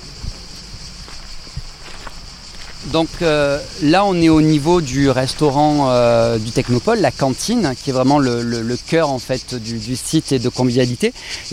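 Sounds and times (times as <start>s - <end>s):
cicadas buzzing outdoors on the grounds of a technology park: 0.0s - 11.5s
soft low thumps like footsteps: 0.1s - 7.5s
speech: 2.8s - 11.5s.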